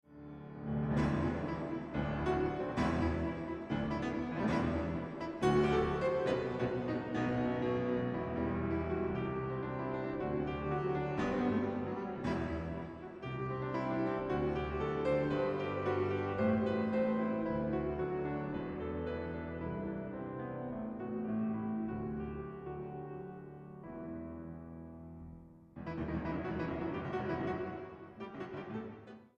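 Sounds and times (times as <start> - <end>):
solo piano: 0.0 - 29.3.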